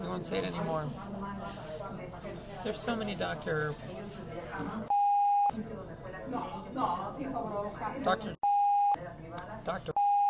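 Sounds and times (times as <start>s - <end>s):
speech: 0.2s - 4.9s, 5.5s - 8.4s, 9.6s - 10.0s
censor bleeps over a spoken name: 4.9s - 5.6s, 8.4s - 9.0s, 10.0s - 10.2s.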